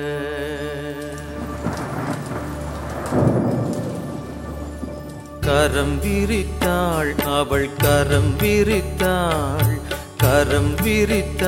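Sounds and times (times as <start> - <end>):
steady rain: 0.0 - 5.5
deep roll of thunder: 1.4 - 6.2
speech: 5.5 - 11.4.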